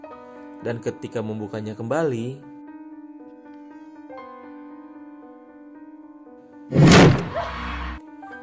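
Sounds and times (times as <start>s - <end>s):
speech: 0.6s - 2.5s
door slamming shut with a heavy thump: 6.7s - 7.5s.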